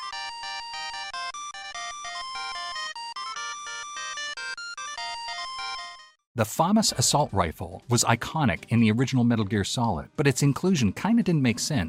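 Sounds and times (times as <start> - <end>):
video game electronic ringtone melody of rapid beeping notes: 0.0 - 6.2
speech: 6.4 - 11.8.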